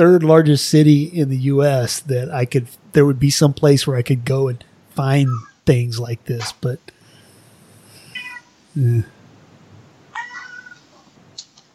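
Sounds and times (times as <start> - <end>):
speech: 0.0 - 7.0, 8.8 - 9.2
steady hiss: 0.0 - 11.7
cat meowing: 5.3 - 5.6, 8.1 - 8.6, 10.1 - 11.0.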